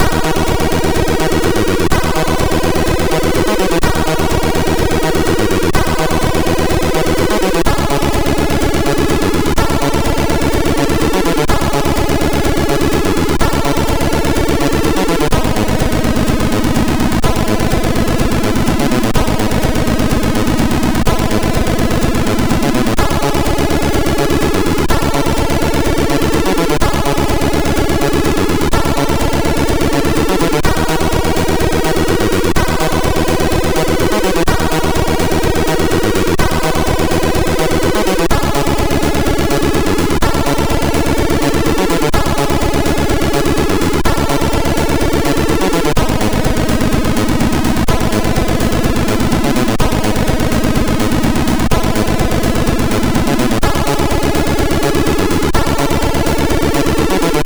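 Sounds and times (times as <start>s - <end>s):
techno on a MOS6581R4 SID chip: 0.0s - 57.4s.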